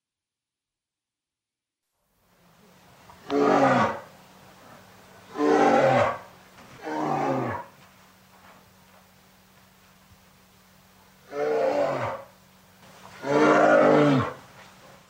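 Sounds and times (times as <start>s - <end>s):
faint steady hum: 1.9s - 15.0s
bear growling in loud throaty roars: 3.2s - 4.1s, 5.3s - 7.7s, 11.3s - 12.3s, 13.2s - 14.4s.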